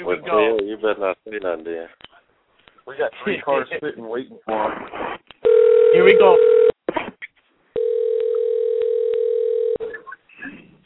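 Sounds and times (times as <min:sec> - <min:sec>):
speech: 0:00.1 - 0:02.1, 0:02.9 - 0:05.1, 0:06.0 - 0:06.7
ringback tone on an outgoing telephone call: 0:05.4 - 0:06.7, 0:07.8 - 0:09.9.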